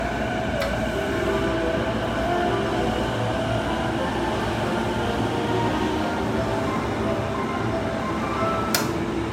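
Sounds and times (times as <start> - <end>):
train sounds: 0.0 - 9.3.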